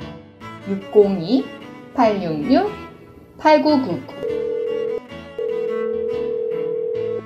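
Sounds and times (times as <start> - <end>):
soft music: 0.0 - 7.2
speech: 0.7 - 4.2
electronic telephone dial tone: 4.1 - 7.2.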